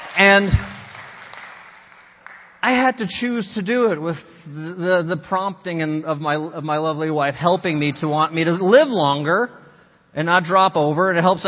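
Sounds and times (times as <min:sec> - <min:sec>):
audience applauding: 0:00.0 - 0:02.6
speech: 0:00.2 - 0:00.7, 0:02.6 - 0:11.4.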